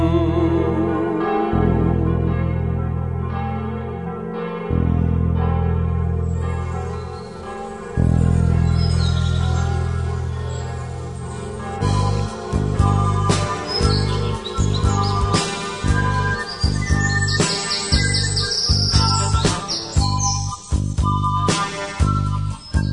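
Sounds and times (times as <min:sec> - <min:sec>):
large church bell tolling: 0:01.1 - 0:18.9
faint birdsong chirping: 0:06.6 - 0:22.9.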